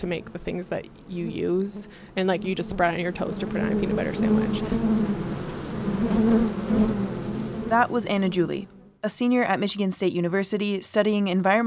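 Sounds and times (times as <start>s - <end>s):
speech: 0.0s - 5.3s, 6.0s - 7.0s, 7.7s - 11.6s
bees buzzing: 1.2s - 9.0s.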